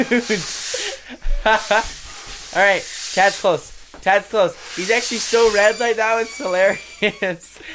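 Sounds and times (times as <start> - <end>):
people laughing: 0.0 - 2.0, 6.2 - 7.7
air rushing out of a huge released balloon in a balloon contest: 0.0 - 7.3
speech: 0.0 - 7.7.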